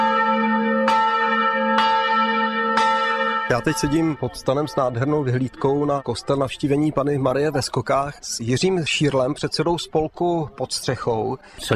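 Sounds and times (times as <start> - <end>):
church bell ringing: 0.0 - 7.5
speech: 3.5 - 11.7.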